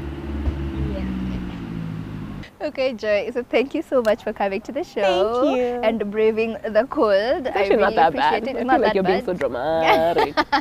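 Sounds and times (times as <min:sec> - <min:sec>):
truck engine rumble outside: 0:00.0 - 0:02.6
speech: 0:02.6 - 0:10.5
laughter: 0:09.8 - 0:10.5.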